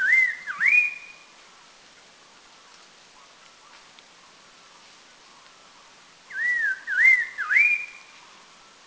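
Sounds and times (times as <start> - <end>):
Red-faced Liocichla whistling at Doi Lang in northern Thailand: 0.0 - 1.2, 6.3 - 8.1.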